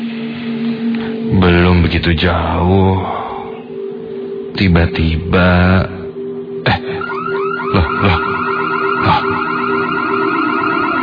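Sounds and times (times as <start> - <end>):
speech: 1.4 - 3.2, 4.6 - 5.9, 6.6 - 7.0, 7.8 - 8.3
several car alarms blaring in a parking lot: 7.0 - 11.0.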